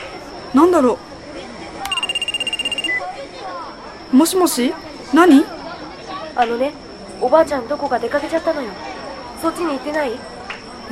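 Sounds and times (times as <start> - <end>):
speech: 0.5 - 1.1, 4.1 - 5.6, 6.4 - 10.3
mobile phone ringing with a bright rapidly pulsing electronic ringtone: 1.9 - 3.0.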